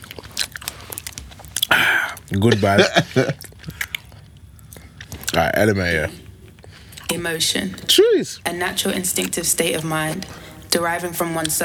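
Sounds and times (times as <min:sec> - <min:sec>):
loud crunchy chewing of crisp snacks: 0:00.0 - 0:11.6
laughter: 0:01.7 - 0:03.8, 0:07.8 - 0:08.4
speech: 0:02.3 - 0:03.5, 0:05.4 - 0:06.2, 0:07.1 - 0:11.6.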